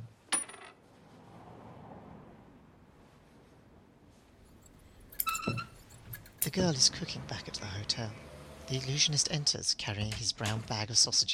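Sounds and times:
loose coins clinking in pockets: 4.5 - 6.6
speech: 6.5 - 11.3.

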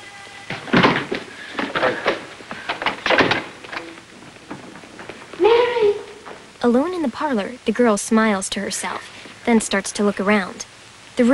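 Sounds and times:
door opening to a room: 0.5 - 6.6
knocks and thumps: 0.5 - 6.6
hurried footsteps: 0.5 - 6.7
person calling out: 5.4 - 6.3
speech: 6.6 - 11.3.

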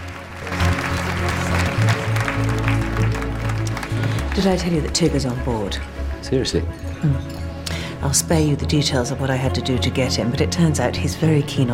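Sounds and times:
group of people applauding: 0.0 - 5.8
speech: 4.4 - 7.4, 8.0 - 11.7.

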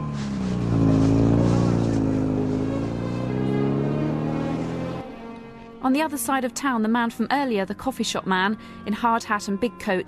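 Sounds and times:
car engine driving away in heavy falling snow: 0.0 - 5.8
speech: 5.8 - 10.0.

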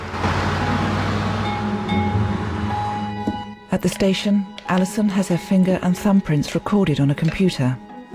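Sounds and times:
police car speeding away with engine roar and tyre noise: 0.0 - 3.3
speech: 3.7 - 7.9.

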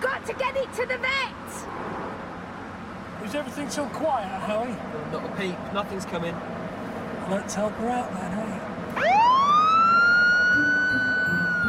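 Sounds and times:
low road rumble: 0.0 - 11.6
speech: 3.2 - 6.6, 7.3 - 9.2
police car siren wailing: 9.0 - 11.6.

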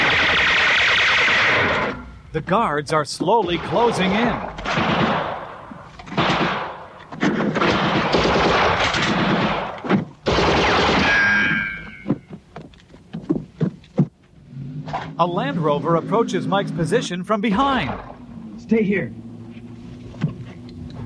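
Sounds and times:
heavy machine-gun fire during a firefight with guards: 0.0 - 2.1, 3.4 - 11.4
speech: 2.3 - 5.2, 15.2 - 19.2.

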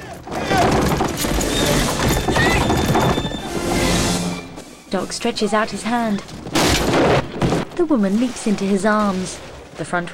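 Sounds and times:
pounding hooves of a horse-drawn buckboard galloping along a track: 0.0 - 3.7
rattling wheels of a horse-drawn buckboard: 0.0 - 5.0
speech: 4.9 - 7.2, 7.8 - 10.1.

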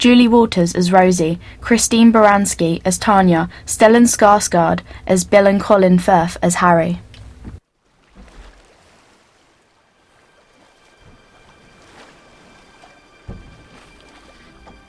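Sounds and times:
speech: 0.0 - 7.1
oars dipping and pulling through water while rowing a boat: 7.3 - 14.8.

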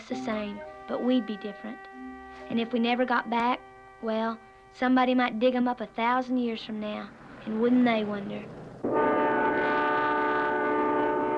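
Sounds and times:
freight train horn blaring: 0.1 - 5.1, 8.8 - 11.3
speech: 0.1 - 9.0.

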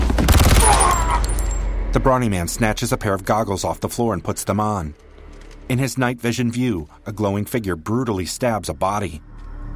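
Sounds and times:
gunfire during a violent struggle: 0.1 - 1.1
speech: 1.9 - 5.1, 5.7 - 9.3.

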